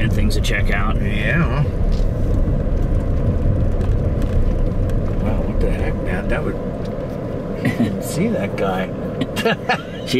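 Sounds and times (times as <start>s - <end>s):
car passing with engine and road noise: 0.0s - 10.1s
speech: 0.3s - 2.5s, 5.6s - 6.9s, 7.7s - 10.1s.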